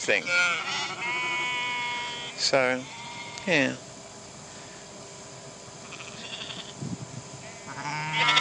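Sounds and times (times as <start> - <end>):
speech: 0.0 - 1.2, 2.4 - 3.9
sheep bleating: 0.1 - 3.8, 5.8 - 6.8, 7.6 - 8.4.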